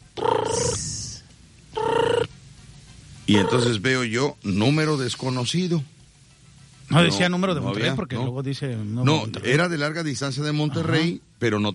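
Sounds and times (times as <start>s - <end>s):
mobile phone ringtone: 0.2s - 0.8s, 1.8s - 2.3s, 3.3s - 3.8s
speech: 3.3s - 6.0s, 6.9s - 11.7s.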